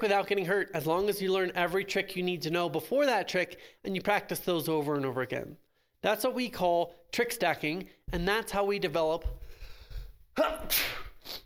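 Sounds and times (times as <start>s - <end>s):
speech: 0.0s - 9.4s, 10.4s - 11.4s
person sneezing loudly: 10.4s - 11.4s.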